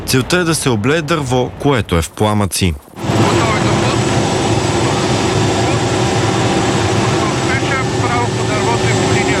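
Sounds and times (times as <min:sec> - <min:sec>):
speech: 0:00.1 - 0:03.4
Cougar military helicopter flying overhead: 0:03.0 - 0:09.3.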